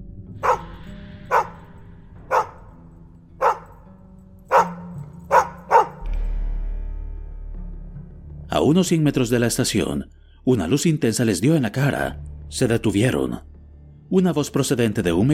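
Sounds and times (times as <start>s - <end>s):
dogs barking: 0.4s - 1.7s, 2.3s - 2.8s, 3.4s - 3.9s, 4.5s - 6.1s
speech: 8.6s - 13.5s, 14.1s - 15.3s.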